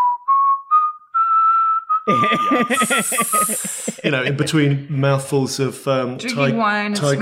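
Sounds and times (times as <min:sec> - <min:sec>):
person whistling a TV theme tune: 0:00.0 - 0:03.9
loud rough burst of laughter or commotion: 0:02.1 - 0:04.4
speech: 0:02.1 - 0:07.1.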